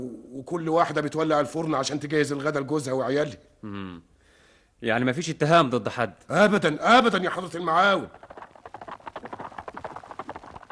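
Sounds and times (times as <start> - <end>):
speech: 0.0 - 4.1, 4.8 - 8.2
horse hooves clip-clopping while pulling a cart: 7.3 - 10.7.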